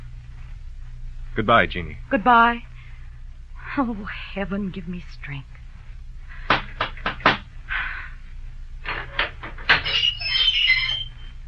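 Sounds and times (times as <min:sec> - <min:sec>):
speech: 0:01.4 - 0:02.7, 0:03.7 - 0:05.6
knocking on a wooden door: 0:06.5 - 0:07.5
wooden door creaking and scraping open: 0:08.8 - 0:11.4.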